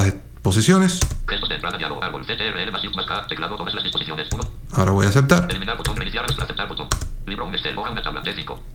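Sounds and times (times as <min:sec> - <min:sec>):
speech: 0:00.5 - 0:08.7
computer keyboard key presses: 0:01.0 - 0:01.8, 0:03.9 - 0:04.6, 0:05.4 - 0:07.2.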